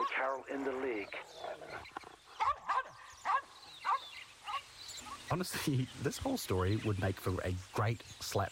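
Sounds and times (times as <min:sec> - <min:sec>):
speech: 0:00.2 - 0:02.0, 0:05.3 - 0:08.4
small dog barking excitedly: 0:02.4 - 0:04.6.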